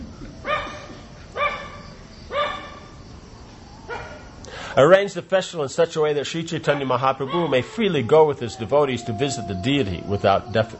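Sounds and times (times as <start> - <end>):
dog barking: 0.5 - 2.9, 3.9 - 4.3, 6.6 - 7.8
speech: 4.8 - 10.7.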